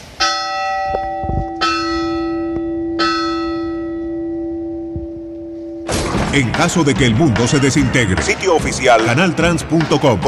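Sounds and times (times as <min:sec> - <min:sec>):
large bell ringing: 0:00.2 - 0:06.8
speech: 0:06.3 - 0:10.2.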